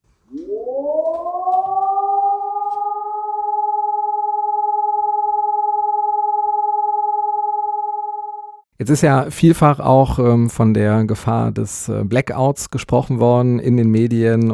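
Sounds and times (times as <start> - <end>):
all-clear siren tone after an emergency: 0.3 - 8.7
speech: 8.8 - 14.5.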